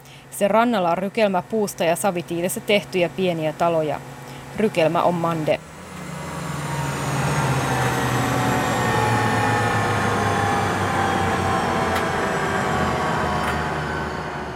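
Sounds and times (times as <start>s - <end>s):
speech: 0.4s - 5.7s
helicopter engine and rotor roar heard inside the cabin: 4.6s - 14.5s.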